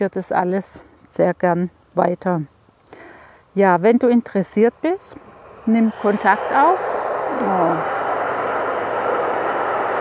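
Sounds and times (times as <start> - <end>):
speech: 0.0 - 2.5, 3.6 - 8.0
train passing: 3.7 - 9.9.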